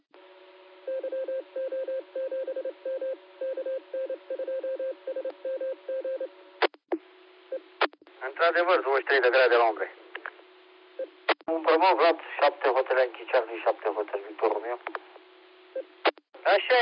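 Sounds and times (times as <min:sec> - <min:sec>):
telephone line beeps: 0:00.9 - 0:06.3
speech: 0:08.4 - 0:10.0, 0:11.7 - 0:15.0, 0:16.5 - 0:16.8.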